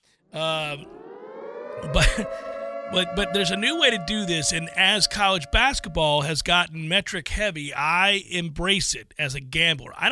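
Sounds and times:
speech: 0.3 - 1.0, 1.8 - 10.1
siren sound effect: 0.3 - 6.4.

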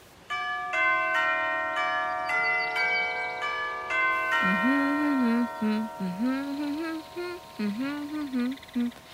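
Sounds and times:
cottage doorbell chiming a short catchy melody: 0.3 - 7.8
person talking: 4.4 - 9.1.

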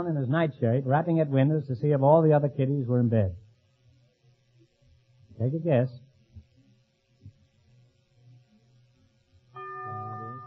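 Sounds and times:
speech: 0.0 - 3.4, 5.4 - 6.0
low murmuring hum: 0.0 - 10.4
bell tolling for a wrong answer: 9.6 - 10.4.

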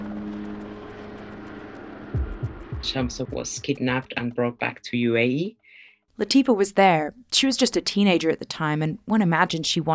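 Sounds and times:
airplane engine droning in flight: 0.0 - 3.7
speech: 2.8 - 5.6, 6.2 - 9.9.

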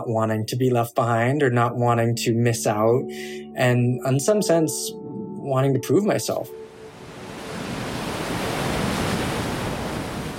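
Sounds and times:
speech: 0.0 - 6.7
heavy ocean surf with large swells: 6.6 - 10.3.

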